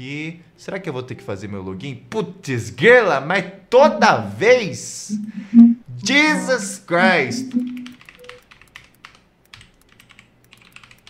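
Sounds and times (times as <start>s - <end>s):
speech: 0.0s - 7.7s
rapid keystrokes on a gaming keyboard: 7.0s - 11.0s.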